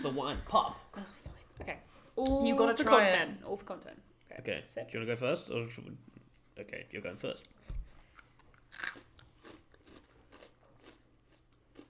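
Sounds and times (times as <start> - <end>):
speech: 0.0 - 7.8
chewing crackles: 8.1 - 11.8
biting and crunching a wasabi pea: 8.4 - 11.8.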